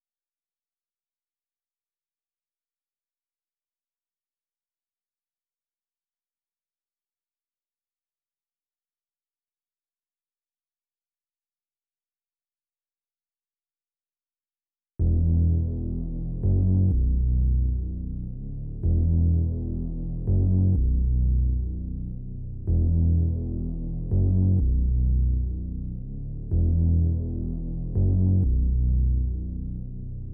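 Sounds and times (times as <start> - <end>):
B minor bass line: 15.0 - 30.3.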